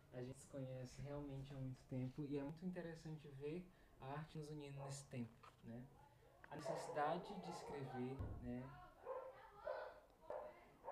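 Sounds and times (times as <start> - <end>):
speech: 0.1 - 8.8
female dog barking: 6.6 - 8.1, 9.0 - 10.8.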